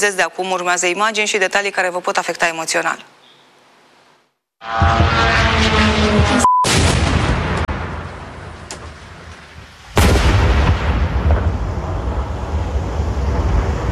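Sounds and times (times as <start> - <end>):
speech: 0.0 - 3.2, 4.6 - 6.5
powerful explosions booming during drone and missile attack: 4.8 - 13.9.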